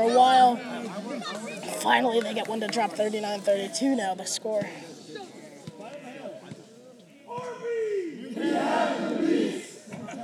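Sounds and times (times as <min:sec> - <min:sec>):
speech: 0:01.8 - 0:05.0
indoor crowd yelling and roarring to distract free-throw shooter: 0:07.3 - 0:10.2.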